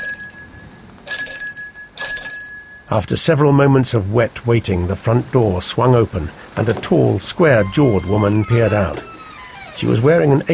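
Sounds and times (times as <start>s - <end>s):
doorbell ringing at the front door of a house: 0.0s - 2.9s
speech: 2.9s - 9.1s, 9.8s - 10.5s.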